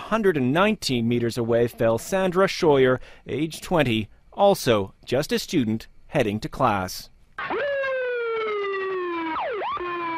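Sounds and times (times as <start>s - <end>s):
speech: 0.1s - 7.6s
ambulance siren wailing as ambulances arrive: 7.4s - 10.1s.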